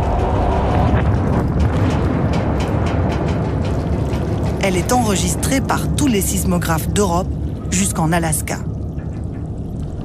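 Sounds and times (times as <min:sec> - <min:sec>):
massive underwater explosion rumbling roar: 0:00.0 - 0:06.0
crackling noise: 0:00.0 - 0:10.0
speech: 0:04.7 - 0:08.7.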